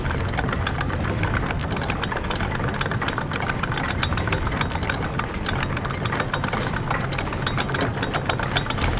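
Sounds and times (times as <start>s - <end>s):
pallet winch moving: 0.0s - 8.9s.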